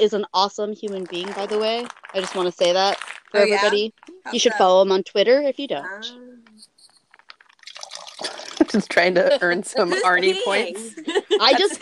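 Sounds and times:
speech: 0:00.0 - 0:06.3, 0:08.2 - 0:11.7
boxed wine pouring from a box into a glass: 0:07.4 - 0:09.0
laughter: 0:08.3 - 0:11.7.

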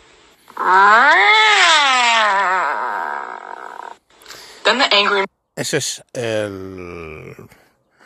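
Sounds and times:
speech: 0:00.6 - 0:01.3, 0:05.0 - 0:07.6
cat meowing in dissatisfaction: 0:00.6 - 0:03.9.

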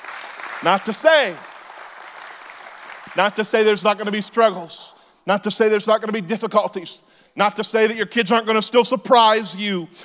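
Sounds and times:
congregation clapping: 0:00.0 - 0:04.2
speech: 0:00.6 - 0:01.5, 0:03.2 - 0:10.0.

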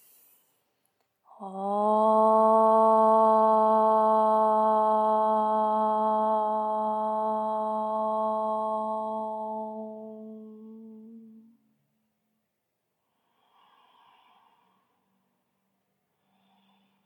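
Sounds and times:
single om chanted to close a yoga practice: 0:01.3 - 0:11.8.

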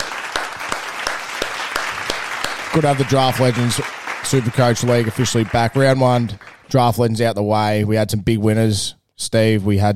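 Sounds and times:
applause sound effect of a crowd clapping: 0:00.0 - 0:06.8
speech: 0:02.8 - 0:09.9.

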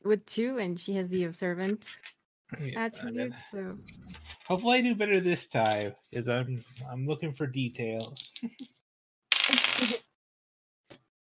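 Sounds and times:
speech: 0:00.1 - 0:08.8, 0:09.5 - 0:10.1
two dice rattling across a hard surface: 0:09.3 - 0:10.1.

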